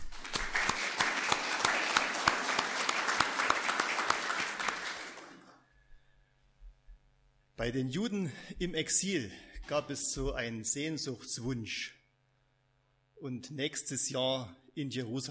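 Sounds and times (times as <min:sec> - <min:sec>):
crowd applauding: 0:00.0 - 0:05.6
speech: 0:07.6 - 0:12.0, 0:13.2 - 0:15.2.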